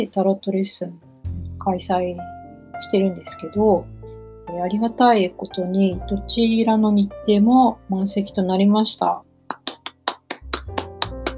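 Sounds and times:
speech: 0:00.0 - 0:01.0, 0:01.6 - 0:09.3
hand claps: 0:09.5 - 0:11.3.

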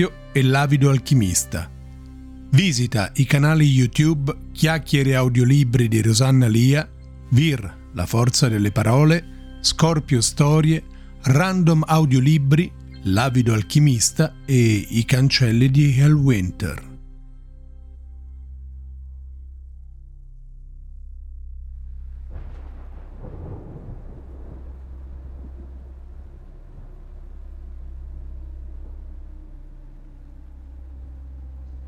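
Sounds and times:
speech: 0:00.0 - 0:01.8, 0:02.5 - 0:16.9
low sustained tones humming: 0:00.0 - 0:31.8
loud thunderclap rolling into rumbling: 0:22.0 - 0:31.2.

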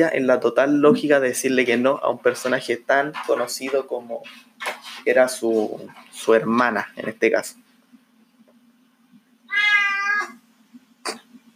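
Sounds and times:
speech: 0:00.0 - 0:07.6
faint steady low hum: 0:00.0 - 0:11.5
cat meowing: 0:09.5 - 0:10.4.

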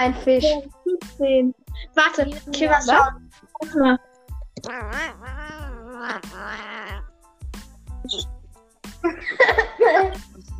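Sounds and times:
speech: 0:00.0 - 0:07.1, 0:08.0 - 0:08.4, 0:09.0 - 0:10.5
cat meowing: 0:04.6 - 0:07.1
laughter: 0:09.0 - 0:10.2.

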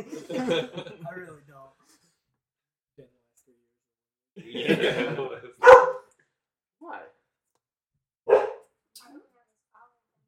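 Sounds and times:
laughter: 0:00.0 - 0:01.3, 0:04.4 - 0:05.6
speech: 0:00.0 - 0:01.8, 0:04.4 - 0:05.5
dog barking: 0:05.6 - 0:06.1, 0:08.3 - 0:08.7.

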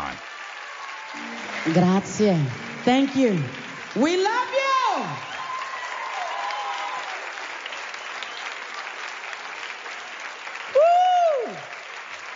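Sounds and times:
large crowd applauding and cheering at live concert: 0:00.0 - 0:12.3
speech: 0:01.6 - 0:05.3
loud rising-and-falling whistle: 0:07.9 - 0:08.6.

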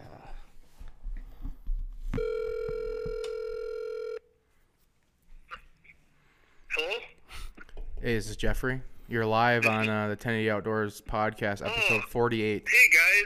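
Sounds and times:
ringback tone from an outgoing phone call: 0:02.2 - 0:04.3
speech: 0:08.0 - 0:13.2.

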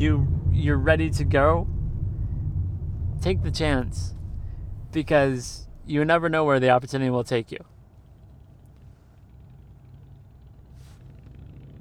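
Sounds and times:
speech: 0:00.0 - 0:01.8, 0:03.2 - 0:04.2, 0:04.9 - 0:07.7
soft hiss: 0:00.0 - 0:09.4
car engine rumble inside a moving car cabin: 0:00.0 - 0:11.8.

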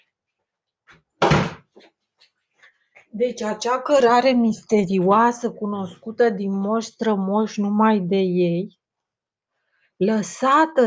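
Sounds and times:
loud broad door thud: 0:01.2 - 0:01.7
speech: 0:03.1 - 0:08.8, 0:10.0 - 0:10.8.

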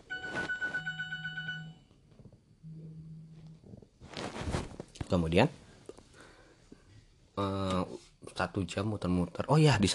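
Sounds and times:
electronic alarm ringing with a rapid pulsing tone: 0:00.0 - 0:01.9
speech: 0:05.1 - 0:05.6, 0:08.6 - 0:09.9.

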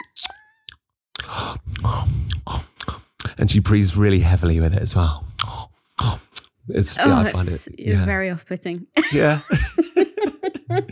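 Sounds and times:
voice imitating loud wet chewing with smacking and crunching: 0:00.0 - 0:03.6, 0:05.0 - 0:07.6
speech: 0:03.4 - 0:05.6, 0:06.7 - 0:09.9
laughter: 0:06.8 - 0:07.6, 0:09.1 - 0:10.9.

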